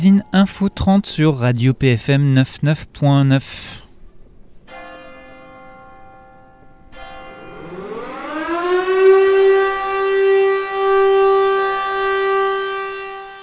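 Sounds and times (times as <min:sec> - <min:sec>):
speech: 0:00.0 - 0:03.8
fire siren winding up and wailing: 0:07.4 - 0:13.4.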